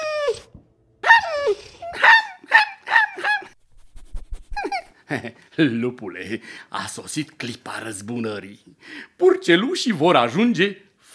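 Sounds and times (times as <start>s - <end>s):
voice imitating a sick ragged puppy whimpering: 0.0s - 3.6s, 4.5s - 5.0s
speech: 5.1s - 11.1s.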